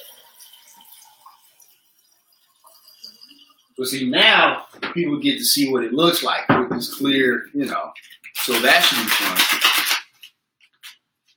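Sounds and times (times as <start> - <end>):
water pouring into a container to mix a strawberry lemonade energy drink: 0.0 - 3.8, 8.0 - 10.0
speech: 3.8 - 9.8.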